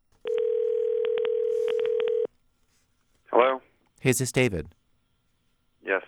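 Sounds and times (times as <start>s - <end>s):
telephone dial tone: 0.2s - 2.3s
speech: 4.0s - 4.8s.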